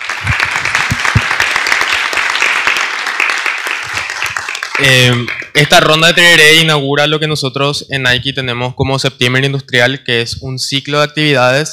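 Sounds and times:
audience applause: 0.0 - 5.6
speech: 4.8 - 11.7.

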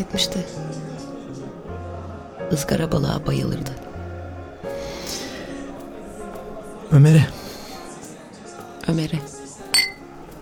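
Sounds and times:
speech: 0.0 - 0.8, 2.5 - 3.9, 6.9 - 7.4, 8.8 - 9.4
two glasses set down on a table after a toast: 9.8 - 10.1.

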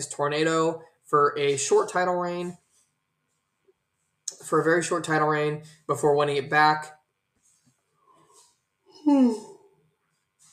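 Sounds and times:
speech: 0.0 - 2.6, 4.4 - 7.0, 9.0 - 9.5
person yawning with a voiced moan: 9.0 - 9.6.

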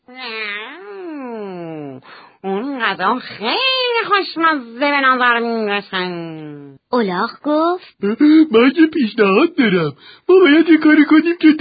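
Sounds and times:
person imitating a long drawn-out cat meow: 0.1 - 2.0
speech: 2.9 - 11.5.

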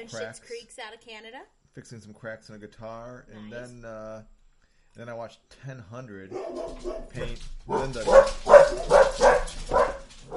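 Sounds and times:
speech: 0.0 - 4.4, 5.0 - 9.8
dog barking: 6.3 - 10.3.

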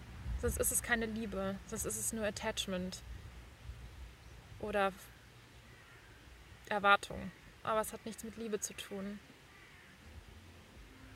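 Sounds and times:
steady low outdoor hum: 0.0 - 11.1
speech: 0.4 - 3.2, 4.6 - 5.1, 6.7 - 9.3
ravens cawing: 5.0 - 6.6, 7.2 - 8.4, 9.4 - 10.1, 10.9 - 11.1.

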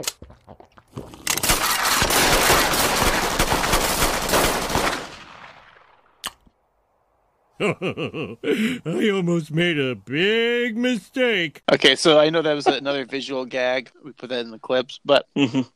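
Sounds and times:
rapid gunfire from people shooting guns while drinking beer: 1.4 - 5.6
laughter: 7.6 - 11.3, 12.0 - 13.4
speech: 7.6 - 15.7.

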